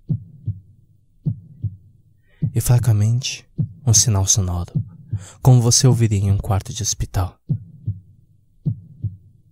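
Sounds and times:
slow muffled heartbeat in lub-dub beats: 0.0s - 2.9s, 3.5s - 5.3s, 7.4s - 9.4s
speech: 2.5s - 7.5s.

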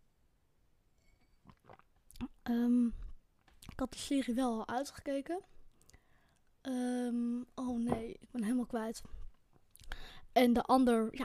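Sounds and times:
person sipping iced tea: 1.0s - 2.4s
swallowing: 1.3s - 2.4s
speech: 2.5s - 3.0s, 3.8s - 5.6s, 6.6s - 9.2s, 10.0s - 11.2s.

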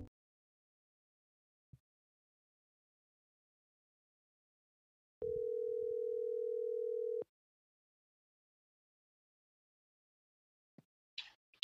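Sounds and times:
loud telephone dial tone: 5.2s - 7.3s.

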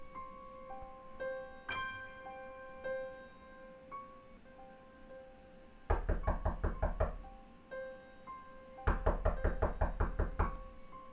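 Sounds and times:
faint tonal sounds: 0.0s - 11.1s
rapid loud knocking on a door: 5.9s - 7.3s, 8.8s - 10.6s.

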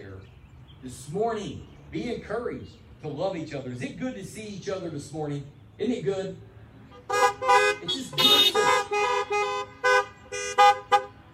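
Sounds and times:
speech: 0.8s - 6.5s, 7.4s - 9.4s
cluster of car horns honking: 6.9s - 11.3s.

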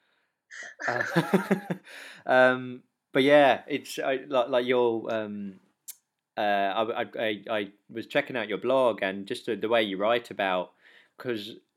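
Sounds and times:
laughter: 0.8s - 1.8s
speech: 0.8s - 5.6s, 6.4s - 11.6s
sharp intake of breath: 1.8s - 2.2s.

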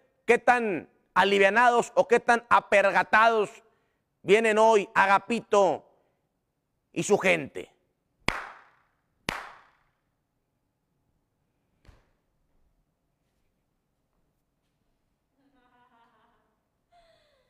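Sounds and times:
speech: 0.3s - 3.6s, 4.2s - 5.9s, 6.9s - 7.7s
hand claps: 8.2s - 10.0s.

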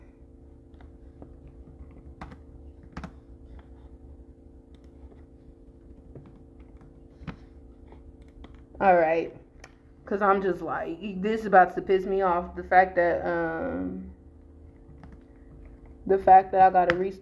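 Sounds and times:
constant low electrical hum: 0.0s - 17.1s
typing on a computer keyboard: 0.7s - 3.2s, 14.9s - 15.2s
speech: 8.8s - 9.4s, 10.1s - 14.1s, 16.1s - 17.1s.

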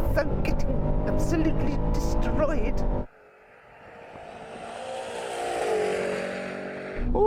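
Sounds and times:
speech: 0.2s - 3.1s
Tesla Cybertruck accelerating hard from a standstill: 3.0s - 7.0s.

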